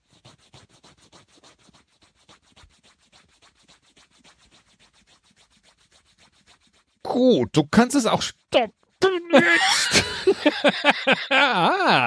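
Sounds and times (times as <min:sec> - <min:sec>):
nail file rasping against fingernails: 0:00.0 - 0:07.0
speech: 0:07.2 - 0:08.8, 0:10.3 - 0:12.0
laughter: 0:09.2 - 0:12.0.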